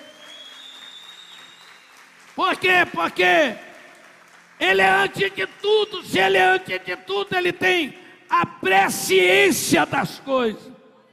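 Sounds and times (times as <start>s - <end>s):
audience applauding loudly: 0.0s - 7.0s
speech: 2.4s - 3.7s, 4.6s - 10.7s.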